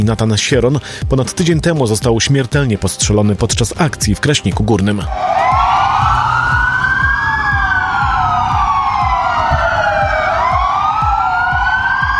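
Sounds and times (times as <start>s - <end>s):
speech: 0.0s - 5.4s
police car engines rumbling: 5.1s - 12.1s
police car sirens wailing in tribute: 5.1s - 12.1s.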